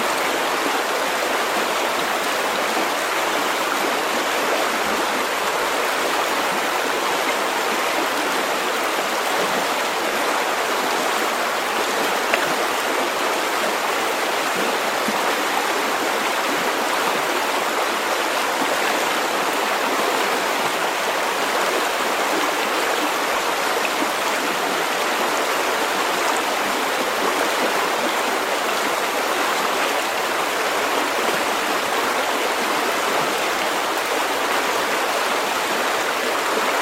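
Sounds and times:
small river flowing: 0.0 - 36.8.

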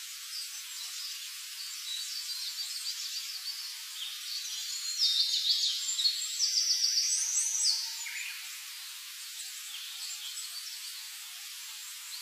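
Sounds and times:
steady hiss: 0.0 - 12.2
early-morning birdsong with thin high chirps and trills: 0.4 - 11.2.

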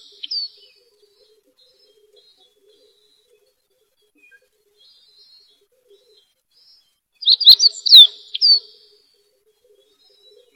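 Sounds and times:
birdsong in a home orchard: 7.2 - 8.6.

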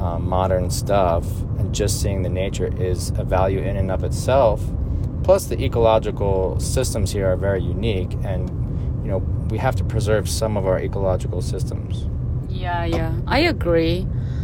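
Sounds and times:
road noise in a moving car's cabin: 0.0 - 14.4
speech: 0.3 - 14.3.

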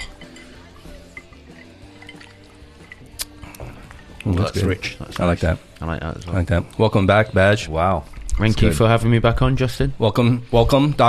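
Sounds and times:
whiskey glasses clinking during a toast: 0.0 - 3.3
soft liquid sloshing: 0.0 - 5.2
speech: 4.3 - 11.0.

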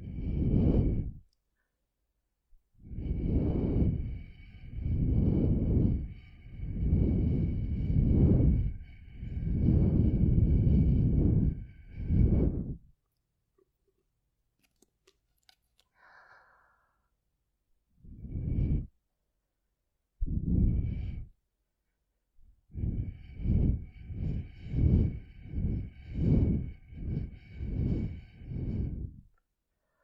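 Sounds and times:
air blown through a straw into an ear: 0.0 - 1.2, 2.8 - 12.9, 18.0 - 18.9, 20.2 - 21.4, 22.7 - 29.4.

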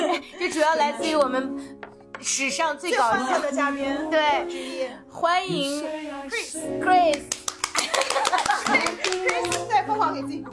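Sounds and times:
speech: 0.5 - 7.3, 8.3 - 10.5
rapid hand clapping: 7.1 - 9.7
people laughing: 7.6 - 9.6.

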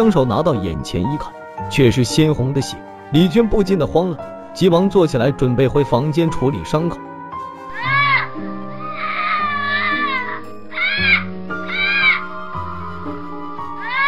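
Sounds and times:
speech: 0.0 - 7.1
low steady droning musical background: 0.0 - 14.0
infant crying: 7.7 - 14.0.

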